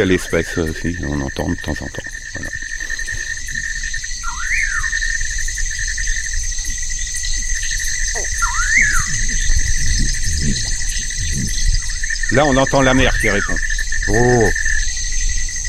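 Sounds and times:
speech: 0.0s - 2.6s, 12.3s - 14.6s
insects chirping at night: 0.0s - 15.6s.

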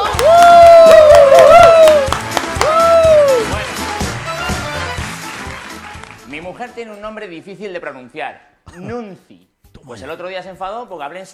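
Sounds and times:
live comedy stage show audience clapping: 0.0s - 6.8s
speech: 6.8s - 11.3s.

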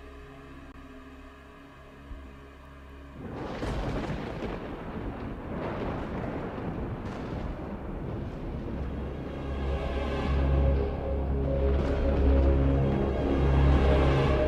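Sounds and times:
rolling thunder: 3.2s - 14.4s.

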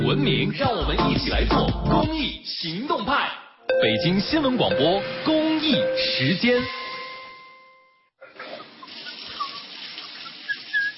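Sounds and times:
speech: 0.2s - 6.8s
brief tone: 3.7s - 8.0s
water running from an open tap left unturned: 8.6s - 10.9s.

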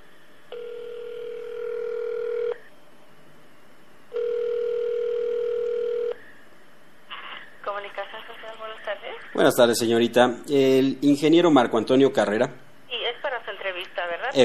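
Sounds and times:
telephone ringback tones while a call is being connected: 0.5s - 2.6s, 4.1s - 6.2s
speech: 9.4s - 12.6s.

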